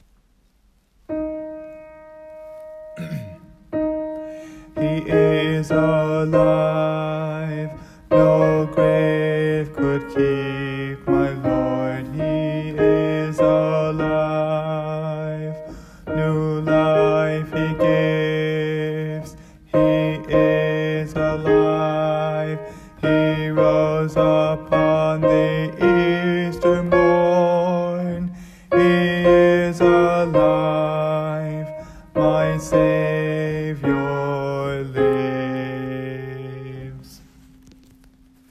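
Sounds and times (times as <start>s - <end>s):
alto chorus singing: 3.8s - 37.4s.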